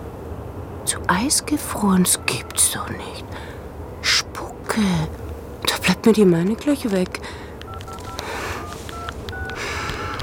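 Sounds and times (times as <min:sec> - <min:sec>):
steady hiss: 0:00.0 - 0:10.2
speech: 0:00.9 - 0:04.2, 0:04.8 - 0:05.2, 0:06.0 - 0:07.4
mobile phone keypad dialing tones: 0:02.0 - 0:03.2, 0:06.8 - 0:10.2.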